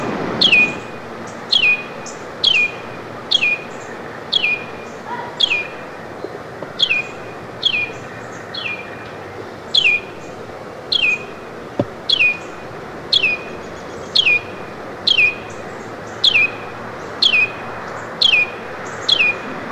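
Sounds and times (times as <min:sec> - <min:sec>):
Carolina wren calling: 0:00.0 - 0:19.7.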